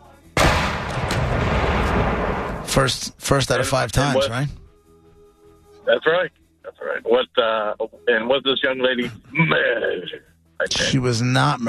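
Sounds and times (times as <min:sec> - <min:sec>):
cannon firing boom: 0:00.4 - 0:03.0
speech: 0:02.8 - 0:04.6, 0:05.9 - 0:11.6.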